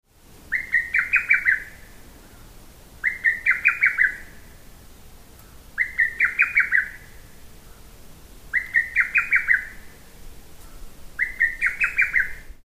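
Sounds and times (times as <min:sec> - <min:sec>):
hototogisu call: 0:00.5 - 0:04.4, 0:05.4 - 0:07.8, 0:08.5 - 0:09.9, 0:10.6 - 0:12.5.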